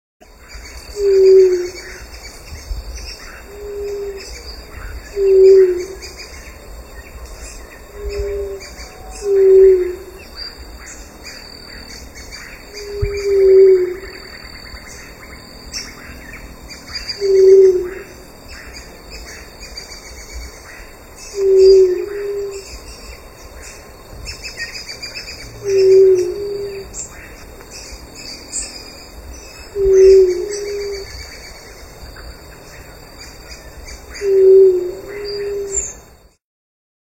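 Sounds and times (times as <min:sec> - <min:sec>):
pariri bird singing: 0:00.2 - 0:36.4.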